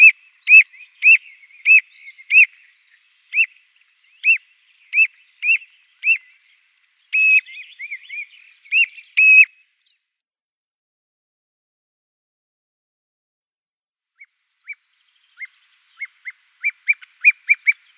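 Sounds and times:
common ringed plover short faint calls: 0.0s - 6.5s, 7.1s - 9.6s, 14.2s - 17.9s.

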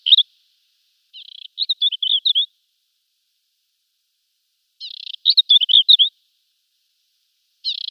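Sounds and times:
African desert warbler song: 0.0s - 0.4s, 1.1s - 2.5s, 4.8s - 6.2s, 7.6s - 7.8s.

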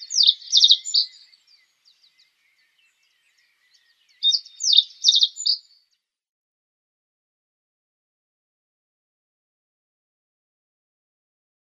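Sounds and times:
reed bunting singing: 0.0s - 6.2s.

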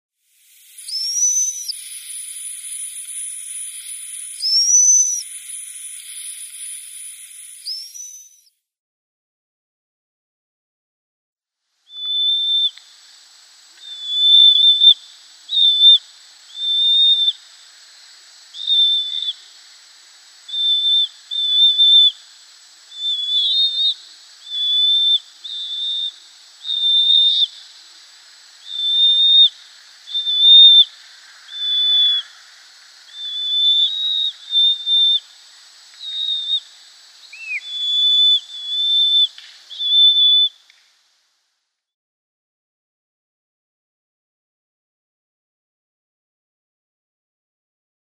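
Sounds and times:
downy young pygmy owl calling: 0.8s - 1.9s, 2.8s - 8.4s, 11.9s - 12.8s, 13.8s - 17.5s, 18.6s - 19.7s, 20.4s - 27.8s, 28.6s - 32.4s, 33.1s - 35.3s, 36.0s - 40.6s.

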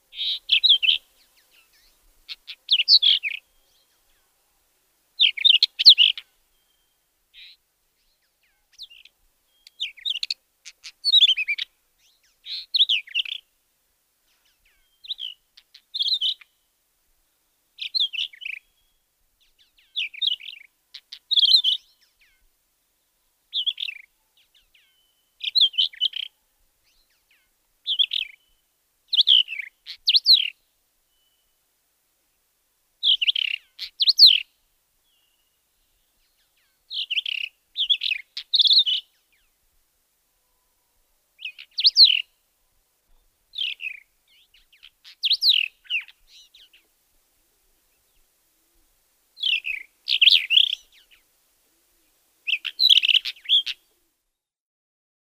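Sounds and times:
Persian Wheatear song: 0.0s - 4.4s, 5.2s - 13.6s, 14.2s - 31.7s, 32.3s - 39.6s, 40.3s - 47.0s, 47.7s - 54.5s.

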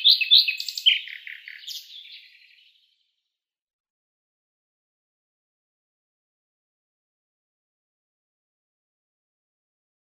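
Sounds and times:
common nightingale song of scratchy warbled notes and slurred whistles: 0.0s - 3.1s.

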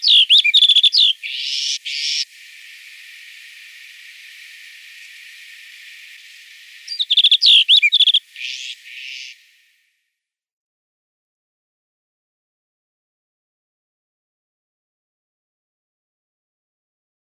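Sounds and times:
snow bunting singing: 0.0s - 9.9s
faint hiss: 1.2s - 10.0s.

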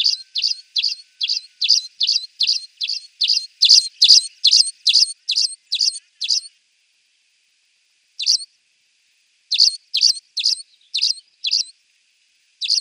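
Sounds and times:
Spanish sparrow strident chirps: 0.0s - 6.6s, 8.2s - 8.5s, 9.5s - 11.8s, 12.6s - 12.8s.

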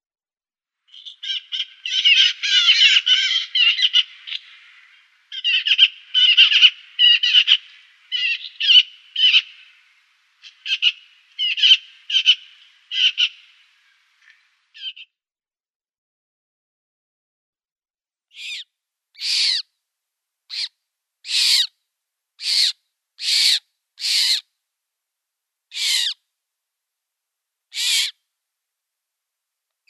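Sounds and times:
Eurasian Magpie nestlings calling: 0.9s - 9.8s, 10.4s - 13.5s, 18.4s - 18.6s, 19.2s - 19.6s, 21.3s - 21.7s, 22.4s - 24.4s, 25.7s - 26.2s, 27.7s - 28.1s.

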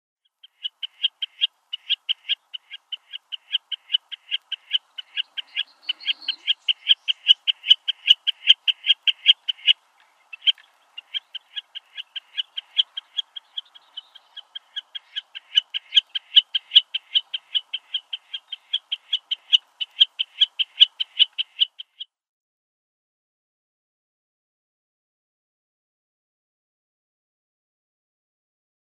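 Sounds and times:
Common Snipe display: 0.4s - 22.1s.

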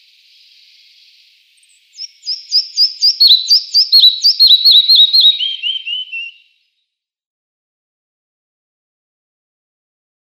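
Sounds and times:
red-breasted flycatcher song: 0.0s - 6.8s.

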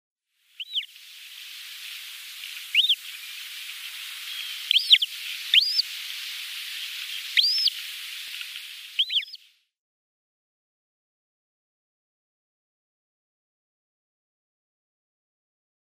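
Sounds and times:
Arctic Skua downy young calling: 0.6s - 9.5s.

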